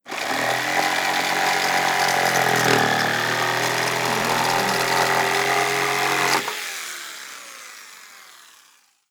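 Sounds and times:
sabre saw cutting old wood: 0.0s - 6.7s.

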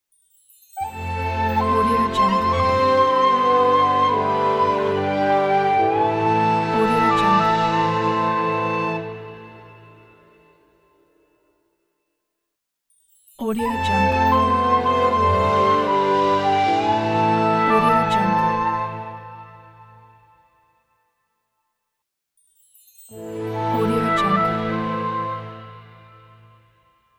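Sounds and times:
calm orchestral logo music: 0.8s - 10.5s, 13.6s - 20.2s, 23.2s - 26.8s.

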